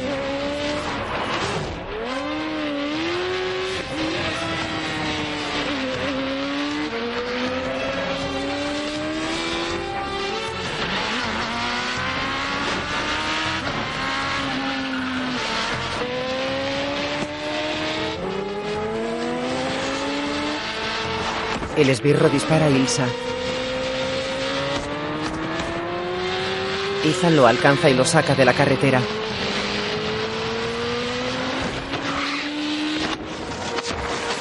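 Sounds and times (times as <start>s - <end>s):
car engines revving on a mountain pass road: 0.0s - 34.4s
tire squeal: 7.4s - 8.6s, 14.3s - 15.9s, 31.6s - 34.4s
speech: 21.8s - 23.4s, 27.0s - 29.4s.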